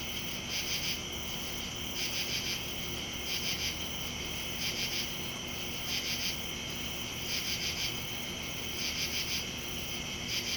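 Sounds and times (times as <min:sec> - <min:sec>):
insects trilling in the woods at night: 0:00.0 - 0:10.5.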